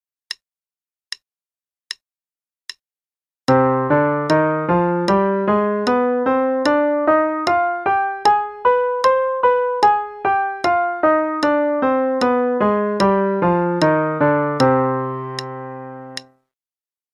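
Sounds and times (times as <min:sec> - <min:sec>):
C harmonic minor scale played in eighth notes over two octaves: 0:03.5 - 0:16.3.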